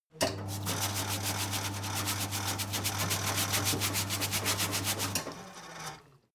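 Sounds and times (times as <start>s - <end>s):
mechanic sink water running: 0.4s - 5.5s
short brush on metal: 0.5s - 5.2s.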